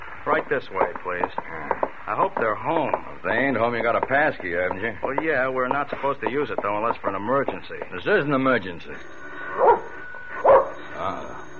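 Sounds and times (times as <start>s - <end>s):
speech: 0.2s - 9.7s
dog barking: 9.6s - 10.8s.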